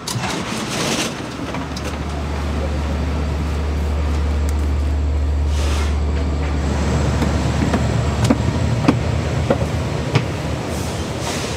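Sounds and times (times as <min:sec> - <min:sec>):
commuter train clicks over the tracks: 0:00.0 - 0:02.2, 0:06.1 - 0:11.5
constant hum inside a commuter train car: 0:00.0 - 0:11.2
two-story commuter train rumbling in motion: 0:00.0 - 0:11.5.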